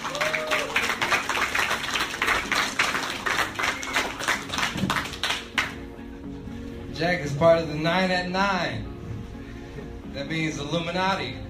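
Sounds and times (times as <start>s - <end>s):
audience applause of many hands clapping: 0.0s - 5.8s
speech: 7.0s - 8.9s, 10.2s - 11.4s.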